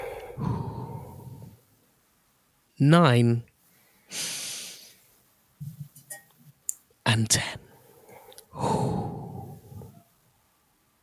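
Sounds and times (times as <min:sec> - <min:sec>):
long breathy exhale in a deep breathing exercise: 0:00.0 - 0:01.6, 0:08.0 - 0:10.0
speech: 0:02.8 - 0:03.5, 0:04.1 - 0:04.4, 0:07.2 - 0:07.6.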